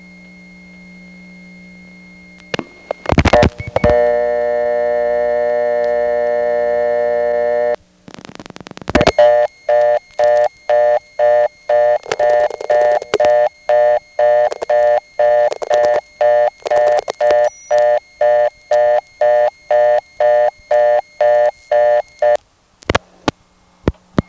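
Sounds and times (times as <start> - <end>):
burst of dialed digits on an old step-by-step telephone line: 3.1 - 7.8, 9.0 - 22.4
regular pulsed telephone exchange beeps: 9.0 - 22.4.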